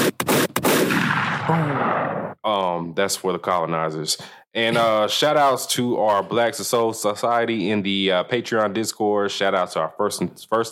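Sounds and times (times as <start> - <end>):
gunshot sound effects: 0.0 - 2.4
speech: 2.4 - 10.7.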